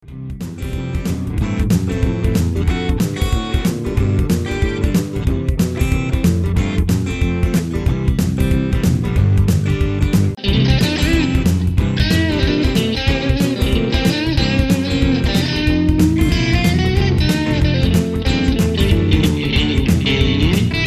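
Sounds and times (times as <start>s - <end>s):
southern country rock music: 0.0s - 20.8s.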